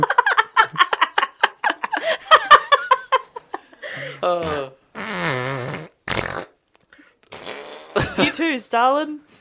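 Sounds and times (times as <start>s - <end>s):
laughter: 0.0s - 4.0s
speech: 4.2s - 4.8s, 8.2s - 9.3s
fart sound effects: 4.4s - 6.6s, 7.3s - 8.1s.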